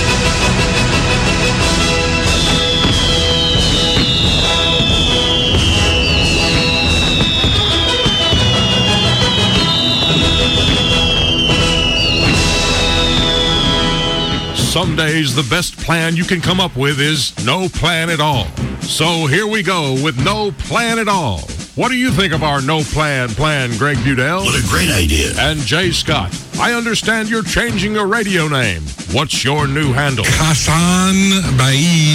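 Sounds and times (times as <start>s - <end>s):
Fourth of July fireworks crackling and booming: 0.2s - 14.6s
fireworks high whistling shrieks sliding downward in pitch: 1.2s - 14.8s, 24.4s - 25.8s
speech: 14.8s - 32.1s.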